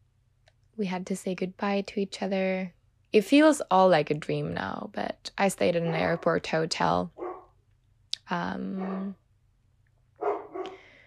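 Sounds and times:
speech: 0:00.8 - 0:07.2, 0:08.3 - 0:09.2
male dog barking: 0:05.9 - 0:06.4, 0:07.2 - 0:07.5, 0:08.8 - 0:09.2, 0:10.2 - 0:10.8.

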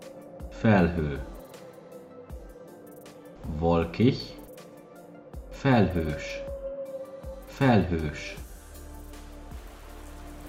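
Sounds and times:
speech: 0:00.6 - 0:01.3, 0:03.6 - 0:04.4, 0:05.6 - 0:06.5, 0:07.6 - 0:08.4
rain pattering on a surface: 0:09.4 - 0:10.4.

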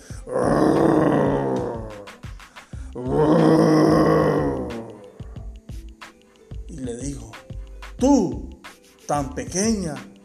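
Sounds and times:
speech: 0:00.3 - 0:00.5, 0:03.0 - 0:03.3, 0:08.0 - 0:08.4, 0:09.1 - 0:10.1
loud deep rough roars: 0:00.3 - 0:02.1, 0:03.0 - 0:05.1.

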